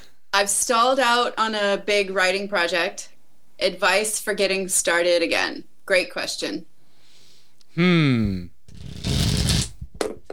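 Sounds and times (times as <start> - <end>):
speech: 0.4 - 6.7, 7.8 - 8.5
tarot cards being shuffled: 8.7 - 9.9.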